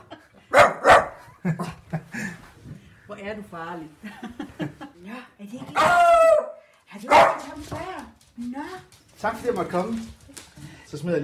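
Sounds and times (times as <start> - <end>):
dog barking and yapping: 0.5 - 1.3, 5.8 - 7.5
speech: 1.4 - 1.9, 3.2 - 6.4, 7.0 - 10.2, 10.9 - 11.2.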